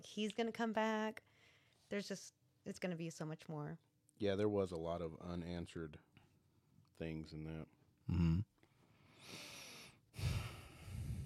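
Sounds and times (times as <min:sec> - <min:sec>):
speech: 0:00.0 - 0:01.3, 0:01.9 - 0:06.1, 0:07.0 - 0:08.5
heavy breathing right against a microphone: 0:08.9 - 0:11.2.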